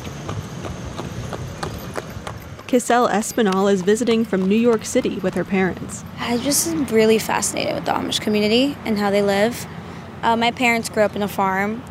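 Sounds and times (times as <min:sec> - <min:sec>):
hooves of an Amish horse and buggy clip-clopping past a farm stand: 0:00.0 - 0:08.4
speech: 0:02.7 - 0:11.8.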